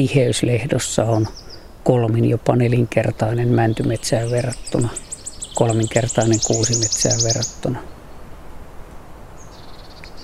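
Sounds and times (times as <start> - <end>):
speech: 0.0 - 5.0, 5.6 - 7.9
blue tit calling in a spring grove: 1.0 - 1.8, 3.0 - 8.2, 9.4 - 10.2.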